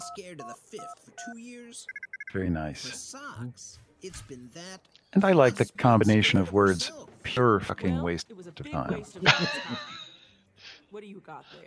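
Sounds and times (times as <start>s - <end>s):
electronic beeps in sci-fi spaceport ambience: 0.0s - 2.5s
speech: 0.2s - 10.0s, 10.9s - 11.6s
laughter: 8.8s - 10.2s.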